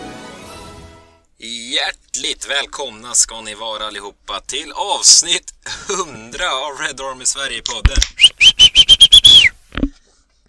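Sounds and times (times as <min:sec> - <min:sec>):
speech: 0:01.7 - 0:08.6
person whistling loudly: 0:08.2 - 0:09.6.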